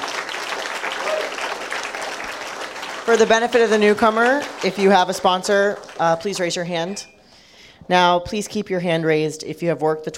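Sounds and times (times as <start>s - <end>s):
audience applause: 0.0s - 6.6s
speech: 3.1s - 7.2s, 7.9s - 10.1s.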